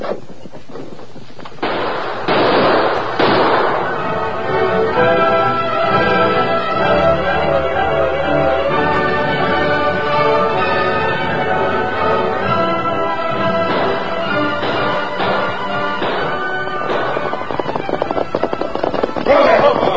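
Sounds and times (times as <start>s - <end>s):
heavy booming shots: 0.0s - 6.8s, 9.2s - 19.9s
dense steady din: 0.0s - 19.9s
rifle gunfire in a radio drama shootout: 1.6s - 4.3s, 13.6s - 19.9s.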